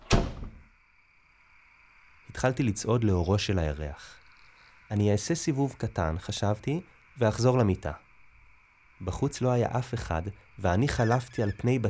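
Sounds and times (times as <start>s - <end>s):
house's wooden door shutting with a heavy thud: 0.0s - 0.7s
speech: 2.4s - 4.2s, 4.9s - 8.0s, 9.0s - 11.8s.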